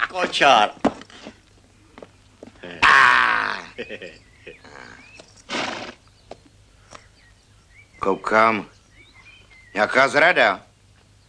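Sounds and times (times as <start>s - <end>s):
speech: 0.1s - 0.8s, 3.8s - 5.1s, 8.0s - 8.8s, 9.8s - 10.7s
carriage horses whinnying: 4.6s - 6.0s.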